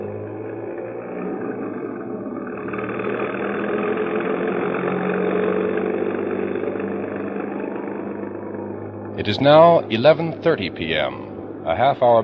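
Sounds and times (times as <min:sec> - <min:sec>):
broadband road noise: 0:00.0 - 0:12.2
large vehicle engine droning rumble: 0:00.0 - 0:12.2
speech: 0:09.2 - 0:12.2.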